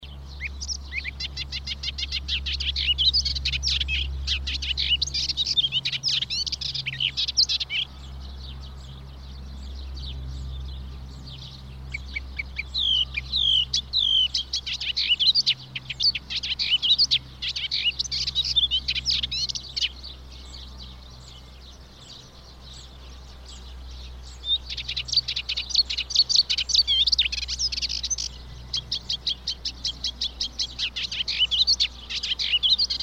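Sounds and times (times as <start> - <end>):
Melodious Warbler singing: 0.0 - 33.0.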